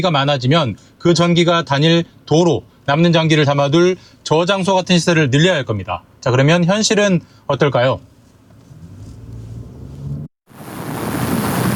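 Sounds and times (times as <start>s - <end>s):
speech: 0.0s - 8.1s
seaside wind beside a converter station on the shore: 10.5s - 11.7s
surf rumbling beside a converter station on the shore: 10.5s - 11.7s.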